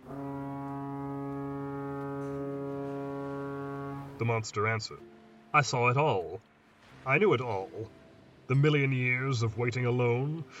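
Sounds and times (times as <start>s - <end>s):
foghorn blowing: 0.0s - 5.6s
speech: 4.2s - 10.5s.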